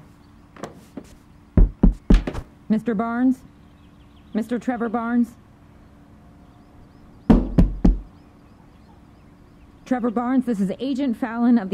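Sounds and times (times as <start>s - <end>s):
firm knocking on a door: 1.6s - 2.4s, 7.3s - 8.1s
speech: 2.7s - 3.5s, 4.4s - 5.4s, 9.9s - 11.7s.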